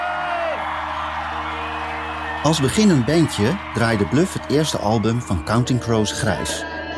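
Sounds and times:
big audience applauding: 0:00.0 - 0:06.6
speech: 0:02.4 - 0:06.8.

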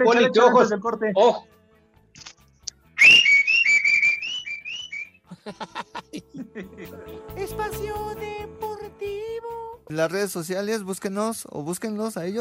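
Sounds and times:
speech: 0:00.1 - 0:01.6, 0:02.2 - 0:02.4, 0:05.5 - 0:12.4
person whistling a short bright melodic phrase: 0:03.0 - 0:05.2
laughter: 0:05.3 - 0:07.1.

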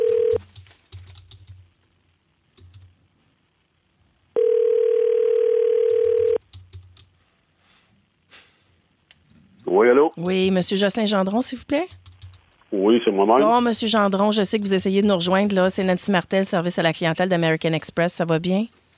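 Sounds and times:
telephone dial tone: 0:00.0 - 0:00.4, 0:04.4 - 0:06.4
speech: 0:10.2 - 0:12.0, 0:12.8 - 0:18.8.

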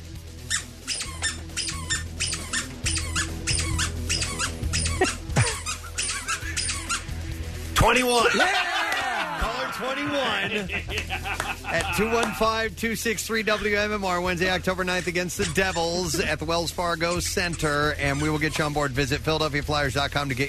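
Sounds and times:
squeaker toy squeaking: 0:00.4 - 0:07.1, 0:13.4 - 0:13.8, 0:14.7 - 0:16.4, 0:17.0 - 0:18.8
laughter: 0:04.8 - 0:07.0, 0:08.0 - 0:12.6, 0:14.8 - 0:16.5
speech: 0:07.8 - 0:08.7, 0:09.8 - 0:20.4.

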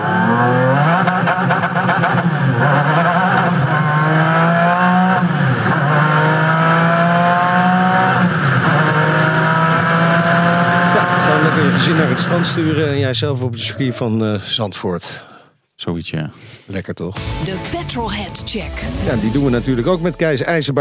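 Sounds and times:
McLaren F1 sports car engine revving: 0:00.0 - 0:12.9
speech: 0:11.8 - 0:15.3, 0:15.9 - 0:20.8.

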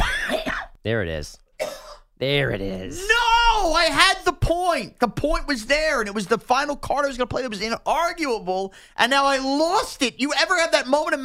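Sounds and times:
cough-like huff: 0:00.0 - 0:00.8, 0:01.6 - 0:02.1
person clearing throat: 0:00.0 - 0:00.8, 0:01.6 - 0:02.1
speech: 0:00.8 - 0:01.4, 0:02.2 - 0:11.2.

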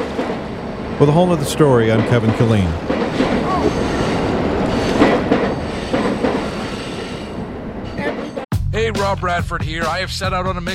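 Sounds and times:
faint squeals of train wheels: 0:00.0 - 0:08.4
train passing overhead on the St. Louis riverfront: 0:00.0 - 0:08.5
speech: 0:01.0 - 0:03.0, 0:09.1 - 0:10.7.

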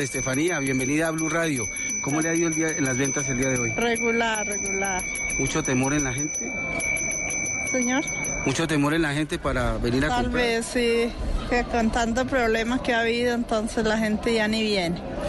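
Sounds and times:
speech: 0:00.0 - 0:07.0, 0:07.7 - 0:15.2
ice cream vendor's hand bell ringing at Plaza de Bolívar in Bogotá: 0:00.0 - 0:09.0.

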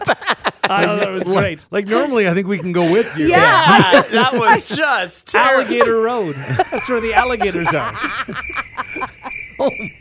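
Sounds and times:
laughter: 0:00.0 - 0:09.9
speech: 0:00.0 - 0:09.9
crickets chirping: 0:06.3 - 0:09.9.

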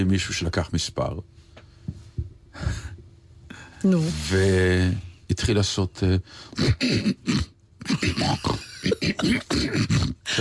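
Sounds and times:
speech: 0:00.0 - 0:01.5, 0:03.8 - 0:10.3
voice imitating a man clearing his throat: 0:06.4 - 0:10.3.

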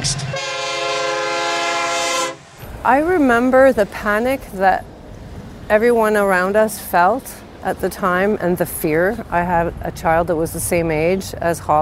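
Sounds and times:
train horn blast: 0:00.1 - 0:02.6
speech: 0:02.8 - 0:04.9, 0:05.7 - 0:11.8.

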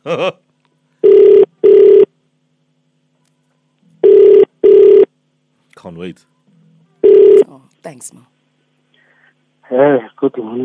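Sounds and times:
speech: 0:00.0 - 0:00.4, 0:06.0 - 0:06.4, 0:07.8 - 0:08.4, 0:09.7 - 0:10.6
telephone ringback tone: 0:01.0 - 0:02.1, 0:04.0 - 0:05.1, 0:07.0 - 0:07.4.

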